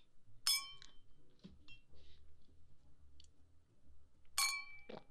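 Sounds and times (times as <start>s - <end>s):
glasses clinking in a toast: 0.5s - 0.9s, 4.4s - 4.9s.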